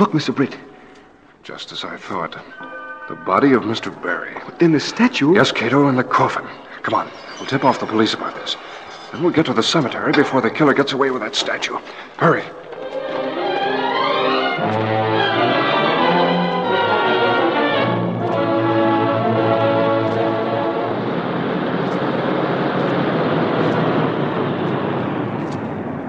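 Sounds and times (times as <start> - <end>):
speech: 0.0 - 0.7, 1.4 - 12.6
road noise: 0.0 - 26.0
loud sustained musical tones: 2.0 - 23.1
car engine drone: 12.9 - 26.0.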